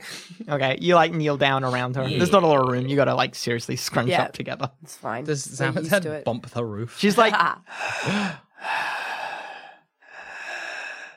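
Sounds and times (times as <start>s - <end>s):
speech: 0.4s - 8.9s
person imitating a woman's heavy laboured breathing: 7.7s - 11.1s.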